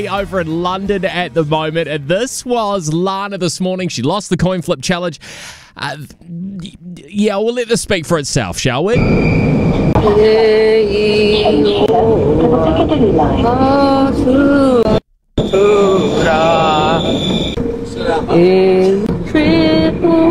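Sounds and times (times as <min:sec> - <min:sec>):
speech: 0:00.0 - 0:11.9, 0:12.8 - 0:14.9, 0:15.5 - 0:20.2
steady rumble of a moving train: 0:09.0 - 0:20.2
woman singing the national anthem on a train: 0:10.0 - 0:15.0, 0:18.1 - 0:20.2.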